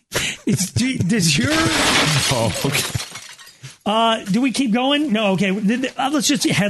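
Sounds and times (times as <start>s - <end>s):
people laughing: 0.2s - 1.7s
speech: 0.3s - 3.0s, 3.9s - 6.6s
glass window shattering: 1.4s - 3.8s.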